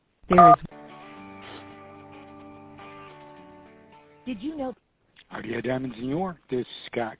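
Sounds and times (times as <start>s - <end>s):
touch-tone telephone keypad beep: 0.3s - 0.6s
speech: 0.3s - 0.7s, 4.3s - 4.8s, 5.4s - 7.1s.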